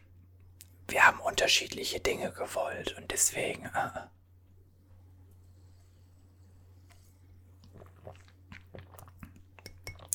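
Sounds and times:
faint low hum: 0.0 - 10.1
speech: 1.0 - 4.2
person sipping and swallowing water: 6.9 - 10.1.

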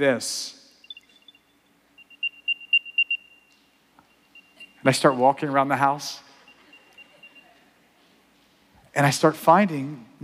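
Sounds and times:
speech: 0.0 - 0.6, 4.8 - 6.2, 9.0 - 10.2
high-pitched electronic beeps from a phone app locating keys: 0.8 - 5.5, 6.1 - 7.6.

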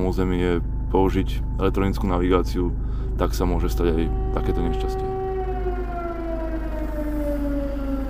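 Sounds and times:
air raid sirens wailing in Kherson Ukraine: 0.0 - 8.0
low rumble: 0.0 - 8.0
speech: 0.1 - 5.1.

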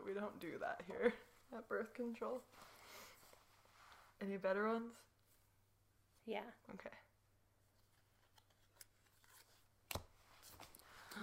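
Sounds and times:
speech: 0.2 - 3.0, 4.2 - 5.1, 6.3 - 7.0
deck of cards being shuffled: 7.8 - 11.2.

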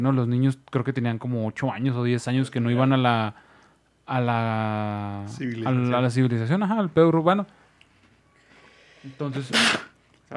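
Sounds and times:
speech: 0.0 - 3.5, 4.1 - 7.6, 9.0 - 10.3
person sneezing: 9.5 - 9.9.

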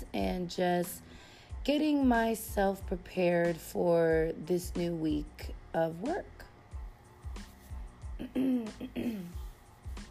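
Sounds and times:
speech: 0.1 - 6.4, 8.2 - 9.4
person clearing throat: 8.2 - 9.4.

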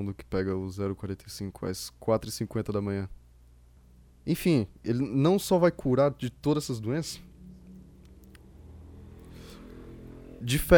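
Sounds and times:
speech: 0.0 - 3.2, 4.2 - 7.3, 10.4 - 10.7
motorcycle with removed exhaust rumbling and revving down a street: 7.3 - 10.6.

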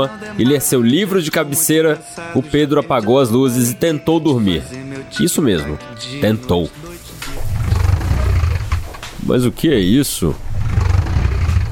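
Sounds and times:
speech: 0.0 - 6.8, 9.3 - 10.5
heavy furniture dragged across a floor: 7.2 - 9.2, 10.4 - 11.6.

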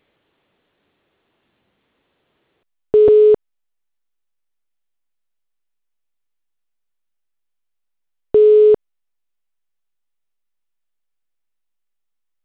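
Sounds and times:
telephone ringing tone beeps while a call connects: 3.0 - 3.4, 8.4 - 8.8.

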